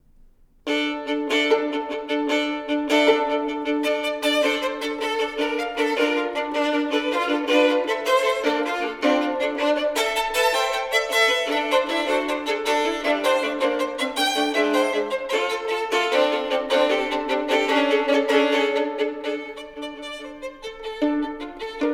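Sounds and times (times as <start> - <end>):
two violins playing a dance: 0.7 - 21.9.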